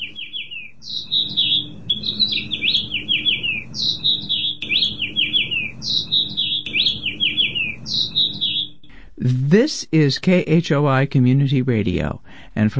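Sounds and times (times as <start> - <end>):
house finches chirping and warbling at nest in downtown Ames: 0.0 - 8.9
low steady hum: 0.0 - 12.7
speech: 9.2 - 12.7.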